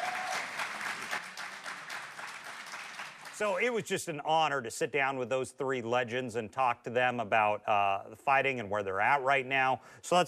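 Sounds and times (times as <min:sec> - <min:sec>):
audience applause with many hands clapping: 0:00.0 - 0:03.7
speech: 0:03.4 - 0:10.2.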